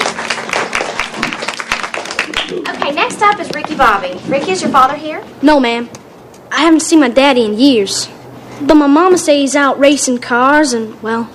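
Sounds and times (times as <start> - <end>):
audience applause: 0.0 - 3.5
speech: 2.9 - 6.0, 6.6 - 11.3.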